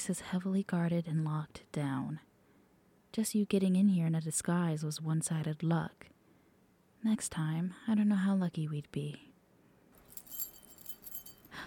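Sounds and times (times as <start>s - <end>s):
speech: 0.0s - 2.3s, 3.1s - 6.2s, 7.0s - 9.3s
bunch of keys jangling: 10.0s - 11.6s.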